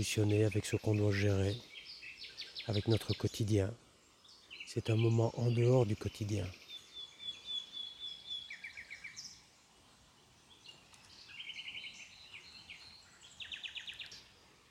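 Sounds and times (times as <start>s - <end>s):
speech: 0.0s - 1.7s, 2.6s - 3.8s, 4.7s - 6.6s
nightingale singing whistles, repeated notes and trills: 0.0s - 14.6s.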